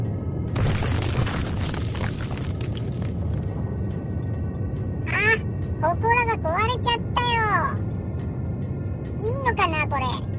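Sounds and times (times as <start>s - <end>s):
deep continuous earth rumble of ground shaking: 0.0s - 10.3s
shrine stone crackling and crumbling as it splits: 0.6s - 3.6s.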